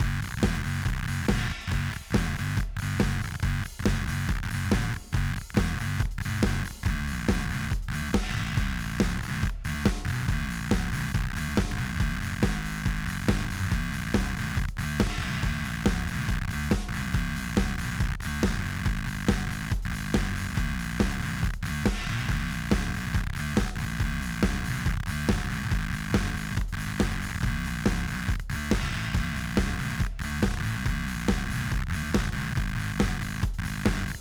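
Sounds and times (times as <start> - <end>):
nasal warbly fuzz bass from a VCO: 0.0 - 34.2
software drums in the background: 0.0 - 34.2.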